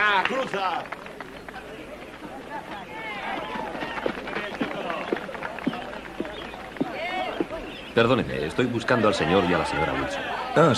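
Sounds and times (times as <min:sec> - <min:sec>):
speech: 0:00.0 - 0:01.1, 0:08.0 - 0:10.7
footsteps of people running: 0:00.0 - 0:08.0.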